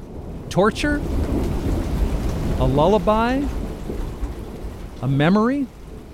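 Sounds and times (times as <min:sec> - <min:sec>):
heavy rain hissing with a low rumbling undertone: 0:00.0 - 0:06.1
person asking a question: 0:00.5 - 0:01.0, 0:02.6 - 0:03.5, 0:05.0 - 0:05.7
speech: 0:00.5 - 0:01.3, 0:02.6 - 0:03.6, 0:05.0 - 0:05.8.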